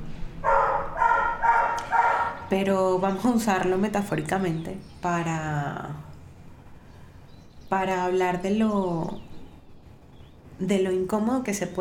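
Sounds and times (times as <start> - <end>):
dog barking in a bedroom in Medellín: 0.4 - 2.5
speech: 2.5 - 6.1, 7.7 - 9.3, 10.6 - 11.8.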